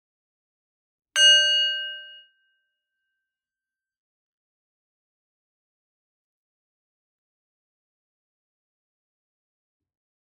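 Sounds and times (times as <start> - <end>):
meditation bell struck and ringing: 1.2 - 2.5.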